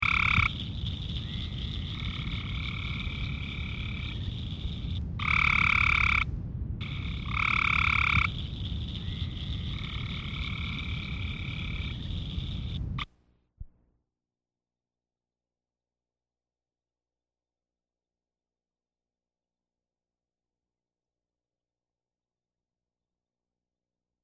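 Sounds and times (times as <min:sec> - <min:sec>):
Cope's gray treefrog calling: 0:00.0 - 0:13.1.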